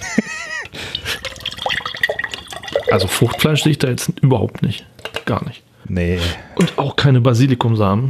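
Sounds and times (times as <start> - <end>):
semi-clear liquid pouring into a glass: 0.9 - 3.8
speech: 2.9 - 8.0.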